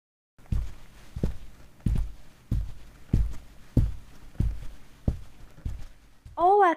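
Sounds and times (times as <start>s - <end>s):
heavy foley footsteps: 0.4s - 6.6s
voice: 6.4s - 6.7s.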